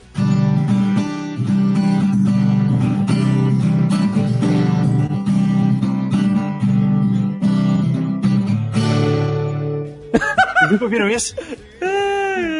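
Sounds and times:
acoustic guitar strumming a 1990s-style chord progression: 0:00.0 - 0:11.7
laughter: 0:10.1 - 0:12.5
speech: 0:10.7 - 0:11.6.

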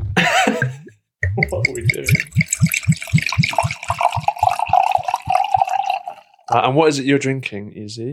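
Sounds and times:
ice-cold Pinot Grigio white wine poured from a bottle: 0:00.0 - 0:06.6
wine splashing: 0:01.2 - 0:06.6
speech: 0:01.4 - 0:02.6, 0:06.5 - 0:08.1.

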